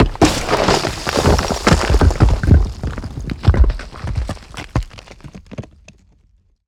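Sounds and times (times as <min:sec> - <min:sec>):
debris and rock rubble falling in a building collapse: 0:00.0 - 0:06.2.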